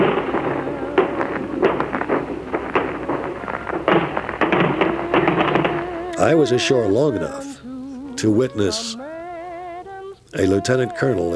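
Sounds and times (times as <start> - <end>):
artillery barrage explosions on a D-Day battlefield: 0.0 - 6.4
speech: 6.2 - 7.5, 8.2 - 9.0, 10.3 - 11.3.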